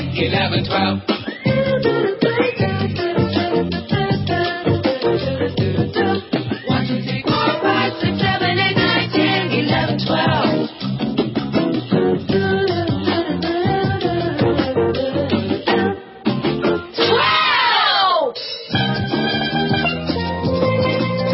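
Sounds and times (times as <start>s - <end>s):
dense rhythmic backing music: 0.0s - 21.3s
excited voices shouting: 17.0s - 18.4s.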